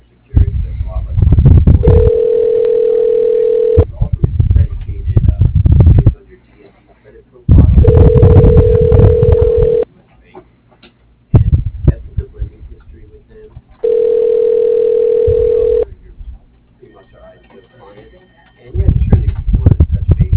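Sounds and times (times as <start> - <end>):
noisy telephone line sound: 0.0 - 20.3
telephone ringback tone while a call is transferred: 1.8 - 3.9, 7.8 - 9.8, 13.8 - 15.9.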